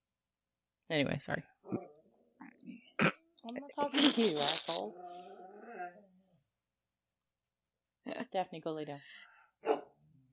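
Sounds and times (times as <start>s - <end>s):
speech: 0.9s - 1.8s, 3.5s - 5.2s, 8.0s - 9.8s
female dog low rumbling grumble: 1.6s - 2.4s, 4.0s - 6.4s
female dog barking: 9.6s - 10.0s.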